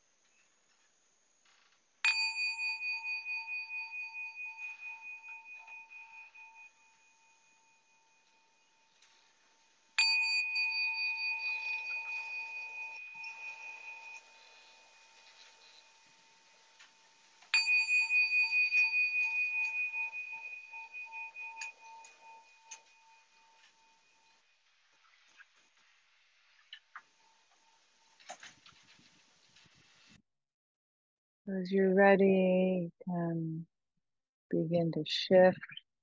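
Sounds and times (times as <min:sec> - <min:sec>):
meditation bell ringing: 0:02.0 - 0:24.4
speech: 0:31.5 - 0:33.7, 0:34.5 - 0:35.8.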